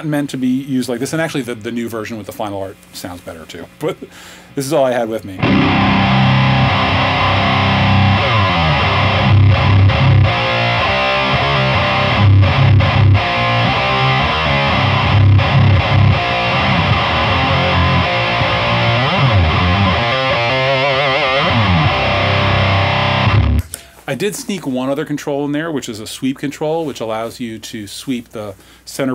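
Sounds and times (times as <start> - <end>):
speech: 0.0 - 6.2, 24.1 - 29.1
electric guitar played through a heavy fuzz distortion pedal: 5.4 - 23.7.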